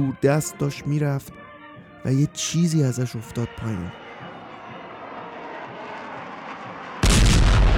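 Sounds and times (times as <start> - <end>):
speech: 0.0 - 1.4, 2.0 - 4.0
loud rumbling explosion: 7.0 - 7.7.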